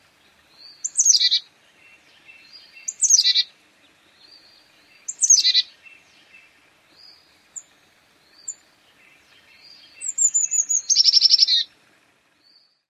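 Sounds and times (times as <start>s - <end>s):
Carolina chickadee calls: 0.7s - 3.5s, 4.4s - 5.8s, 7.0s - 11.7s.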